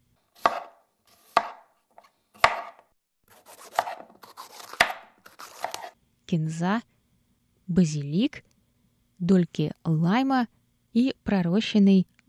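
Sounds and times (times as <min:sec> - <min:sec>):
knife chopping green onions on a cutting board: 0:00.4 - 0:06.0
speech: 0:06.3 - 0:06.9, 0:07.7 - 0:08.5, 0:09.2 - 0:12.2.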